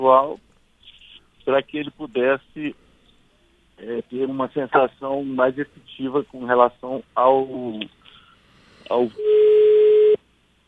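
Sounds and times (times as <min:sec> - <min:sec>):
speech: 0:00.0 - 0:00.5, 0:01.5 - 0:02.8, 0:03.8 - 0:08.0, 0:08.9 - 0:09.7
telephone dial tone after a dropped call: 0:09.2 - 0:10.2.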